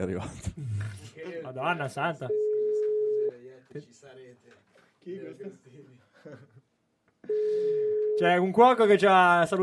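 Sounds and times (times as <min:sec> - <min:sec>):
speech: 0:00.0 - 0:00.6, 0:01.5 - 0:02.4, 0:03.7 - 0:06.6, 0:07.2 - 0:09.6
unanswered telephone call ring tone: 0:02.3 - 0:03.3, 0:07.3 - 0:08.5
laughter: 0:05.9 - 0:06.9.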